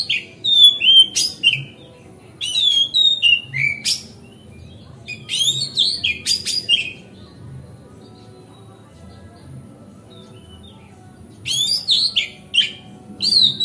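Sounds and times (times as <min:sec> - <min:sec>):
Oriental magpie-robin song on a terrace: 0:00.0 - 0:07.3, 0:10.1 - 0:13.6.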